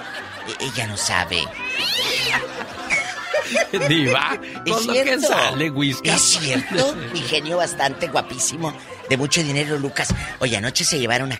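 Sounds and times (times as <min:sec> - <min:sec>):
laughter: 0:00.0 - 0:10.8
speech: 0:00.5 - 0:11.3
cat meowing loudly: 0:01.6 - 0:02.4.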